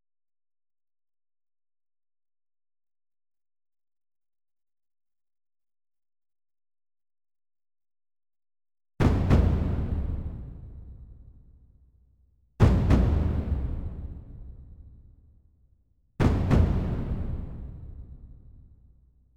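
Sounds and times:
percussion: 9.0s - 19.2s.

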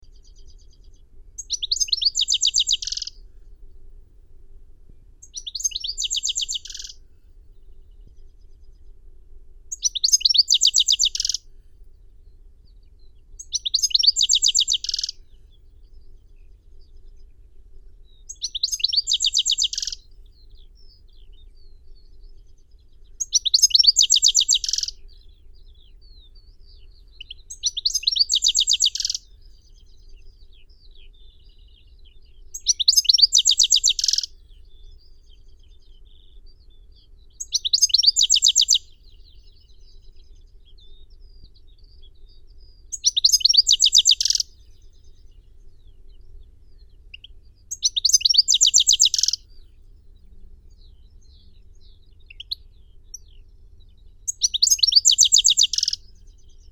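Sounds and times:
goldfinch Carduelis carduelis: 1.4s - 3.1s, 5.2s - 7.0s, 9.8s - 11.4s, 13.4s - 15.2s, 18.3s - 20.0s, 23.2s - 24.9s, 27.6s - 29.2s, 32.5s - 34.3s, 37.4s - 38.8s, 42.9s - 44.6s, 47.7s - 49.4s, 54.3s - 56.0s.

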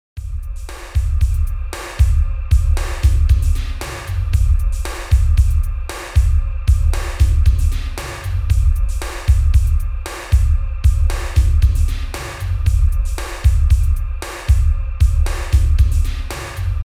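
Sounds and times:
bass beat: 0.2s - 16.9s.

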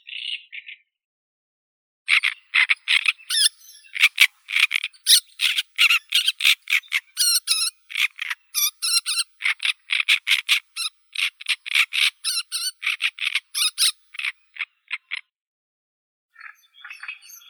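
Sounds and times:
great reed warbler Acrocephalus arundinaceus: 2.1s - 15.2s.

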